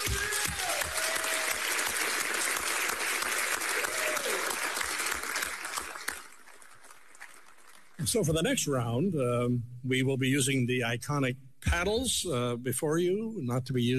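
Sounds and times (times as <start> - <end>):
faint whistles and cheers: 0.0 - 1.9, 3.6 - 4.9
crowd clapping in sustained applause: 0.0 - 8.0
speech: 8.1 - 13.9.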